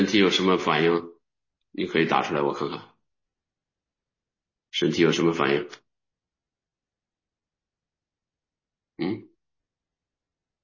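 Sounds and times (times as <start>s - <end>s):
speech: 0.1s - 1.2s, 1.8s - 2.9s, 4.7s - 5.8s, 9.0s - 9.3s
burp: 9.0s - 9.4s.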